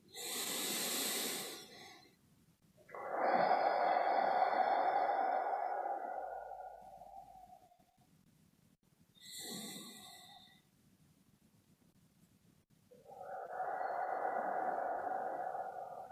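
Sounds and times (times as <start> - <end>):
slow deep breaths in and out in a guided breathing session: 0.0 - 2.2, 2.8 - 8.2, 9.2 - 10.7, 12.9 - 16.1.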